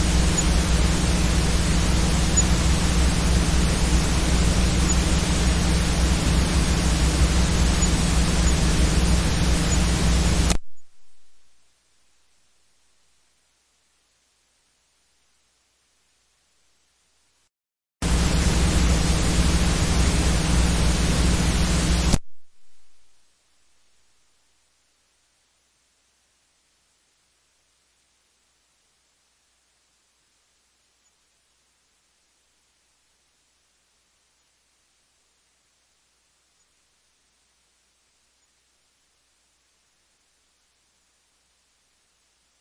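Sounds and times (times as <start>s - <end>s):
low ground hum: 0.0s - 13.2s, 18.0s - 24.4s
steady hiss from a blank cassette tape: 0.0s - 42.5s.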